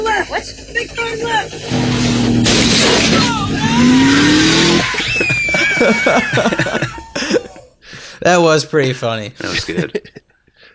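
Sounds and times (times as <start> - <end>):
rough car engine rumble: 0.0 - 7.8
speech: 0.2 - 3.2, 5.8 - 6.8, 8.2 - 10.2
car tires squealing under hard braking: 0.3 - 7.2
laughter: 4.5 - 7.7, 9.4 - 10.6.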